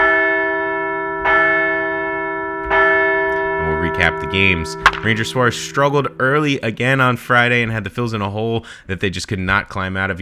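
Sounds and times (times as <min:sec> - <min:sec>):
large bell ringing: 0:00.0 - 0:07.8
speech: 0:04.0 - 0:10.1.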